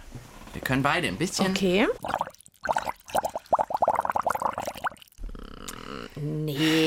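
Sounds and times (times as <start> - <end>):
speech: 0.7 - 2.2
bubbles blown through a straw into a water bowl: 2.0 - 5.2.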